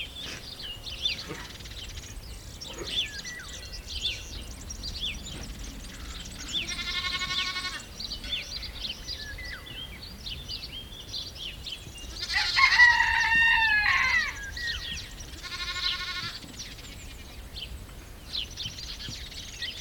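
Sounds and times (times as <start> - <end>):
rustle: 0.0 - 19.7
small birds chirping and twittering: 0.0 - 19.7
goat bleating at a goat camp in the countryside: 6.7 - 8.4, 12.1 - 14.3, 15.4 - 16.4.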